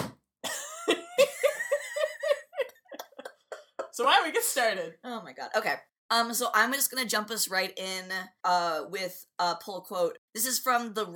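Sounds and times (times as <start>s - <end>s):
person coughing into the microphone: 0.4s - 0.9s
laughter: 0.6s - 4.0s
speech: 4.0s - 11.1s.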